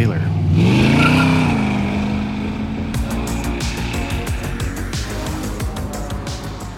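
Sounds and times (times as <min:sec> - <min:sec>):
loud car engine revving: 0:00.0 - 0:06.7
sharp rhythmic bursts: 0:03.0 - 0:06.7.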